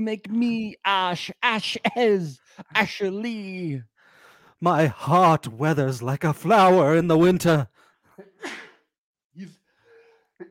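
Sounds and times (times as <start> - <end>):
speech: 0.0 - 3.9, 4.6 - 7.8, 9.4 - 9.6
person sneezing: 8.4 - 9.5.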